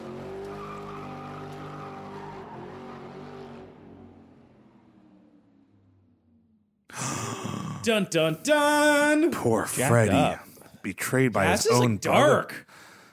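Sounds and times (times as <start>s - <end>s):
getaway car tires squealing at night: 0.0s - 4.9s
getaway car engine roaring at night: 0.0s - 6.7s
speech: 7.8s - 12.8s.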